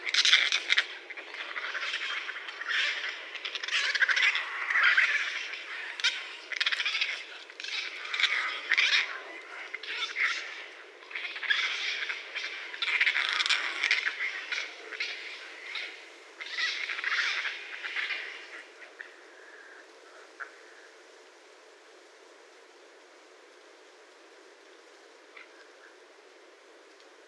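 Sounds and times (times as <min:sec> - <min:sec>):
raccoon harsh squawks and chatters: 0:00.0 - 0:18.6.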